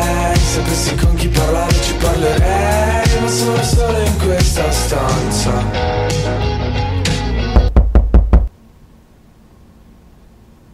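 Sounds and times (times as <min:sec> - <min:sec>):
music: 0:00.0 - 0:08.4
speech: 0:00.8 - 0:01.1
heavy knocks on a door: 0:07.6 - 0:08.5.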